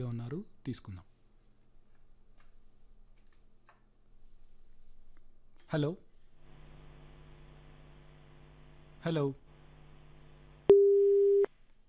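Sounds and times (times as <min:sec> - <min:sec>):
speech: 0:00.0 - 0:01.1, 0:05.7 - 0:06.0, 0:09.0 - 0:09.4
phone busy tone after a call is cut off: 0:10.7 - 0:11.5.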